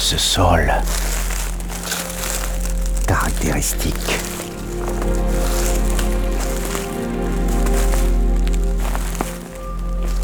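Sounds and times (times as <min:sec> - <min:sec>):
dry twigs cracking underfoot: 0:00.0 - 0:10.2
speech: 0:00.1 - 0:01.2, 0:03.1 - 0:04.3.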